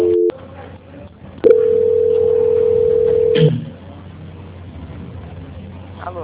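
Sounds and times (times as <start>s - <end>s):
telephone tone on a line while a call is being transferred: 0.0s - 0.3s, 1.5s - 3.5s.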